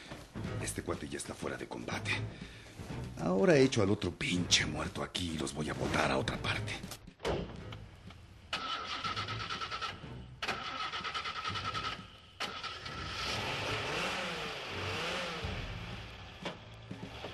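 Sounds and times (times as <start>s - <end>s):
speech: 0.7s - 7.4s
car starter cranking: 8.5s - 13.6s
car engine revving as the car pulls away: 8.5s - 17.3s.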